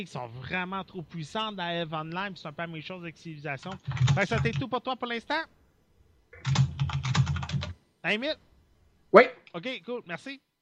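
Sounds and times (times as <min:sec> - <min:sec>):
speech: 0:00.0 - 0:05.6, 0:08.0 - 0:08.5, 0:09.1 - 0:10.5
keys clacking on a mechanical keyboard: 0:03.6 - 0:04.6, 0:06.4 - 0:07.8.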